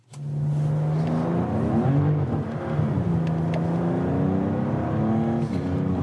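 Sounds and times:
BMW M4 CS sports car engine revving during a test drive: 0:00.2 - 0:06.0.

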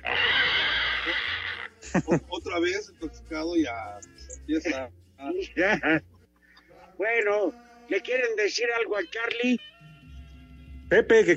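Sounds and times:
manager imitating a pig with a loud raspy squeal: 0:00.0 - 0:01.8
laughter: 0:01.8 - 0:02.6, 0:05.6 - 0:06.7
speech: 0:01.9 - 0:06.1, 0:07.0 - 0:09.7, 0:10.9 - 0:11.3.

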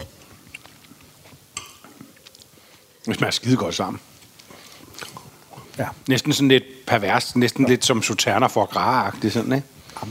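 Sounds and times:
person chewing a bite of food with fish sauce: 0:00.0 - 0:02.9, 0:04.2 - 0:05.8
speech: 0:03.0 - 0:04.1, 0:05.8 - 0:10.0.

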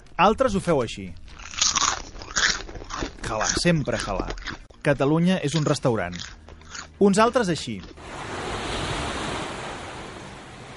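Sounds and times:
speech: 0:00.2 - 0:01.6, 0:03.3 - 0:06.4, 0:07.0 - 0:08.3
ocean waves breaking on shore: 0:08.0 - 0:10.7.

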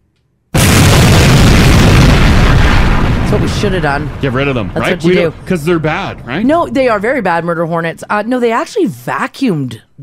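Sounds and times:
explosion sound effect: 0:00.5 - 0:07.2
speech: 0:03.6 - 0:10.0.

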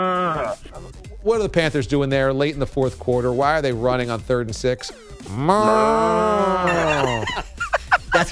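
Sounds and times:
radio show caller imitating a cow mooing: 0:00.0 - 0:00.9, 0:05.3 - 0:07.1
speech: 0:01.2 - 0:07.4
laughter: 0:05.4 - 0:08.2.

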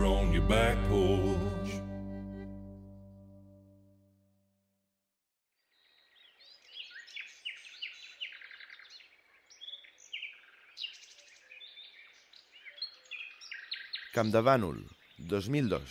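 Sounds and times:
speech: 0:00.4 - 0:01.6, 0:14.2 - 0:15.9
many birds singing and chirping in a chorus: 0:05.6 - 0:15.9.

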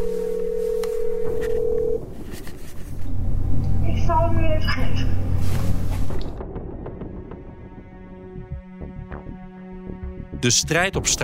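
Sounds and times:
telephone dial tone while a number is called: 0:00.0 - 0:02.0
low rumbling background: 0:00.0 - 0:11.2
speech: 0:10.4 - 0:11.2.

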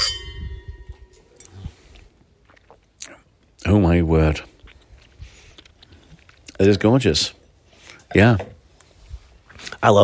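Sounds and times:
wine glasses clinking in a toast: 0:00.0 - 0:01.4
speech: 0:03.6 - 0:04.5, 0:06.6 - 0:07.4, 0:08.1 - 0:08.6, 0:09.8 - 0:10.0.

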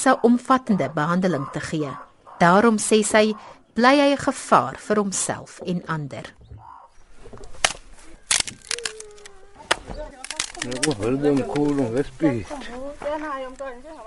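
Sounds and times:
speech: 0:00.0 - 0:06.4, 0:10.6 - 0:14.0
wooden twigs being snapped for firewood: 0:07.2 - 0:12.2.

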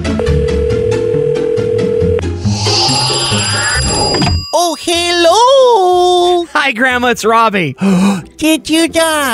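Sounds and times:
telephone ringing with a steady electronic tone: 0:00.2 - 0:05.1
bright shimmering swell of high tones: 0:02.4 - 0:05.3
speech: 0:06.6 - 0:09.3.

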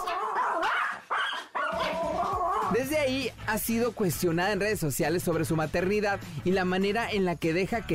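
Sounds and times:
small dog barking and yelping: 0:00.0 - 0:02.8
speech: 0:02.7 - 0:07.9.

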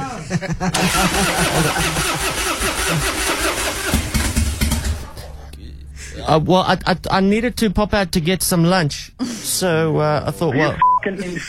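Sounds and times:
laughter: 0:00.0 - 0:03.4, 0:10.5 - 0:11.4
speech: 0:00.3 - 0:03.6, 0:06.3 - 0:11.4
car engine cranking but failing to start: 0:00.7 - 0:05.4.

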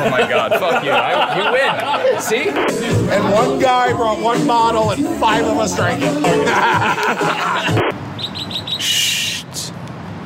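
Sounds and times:
laughter: 0:00.0 - 0:03.1, 0:06.1 - 0:07.9
speech: 0:00.0 - 0:07.9
mechanical bird chirping and buzzing trill: 0:08.1 - 0:09.3.

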